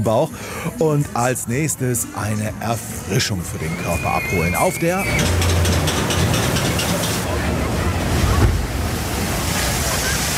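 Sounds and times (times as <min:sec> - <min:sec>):
speech: 0:00.0 - 0:05.8
faint indistinct voices: 0:00.2 - 0:10.3
churning water rushing on a fairground water ride: 0:00.3 - 0:10.3
fairground water-ride boat splashing down a descent: 0:03.6 - 0:10.3.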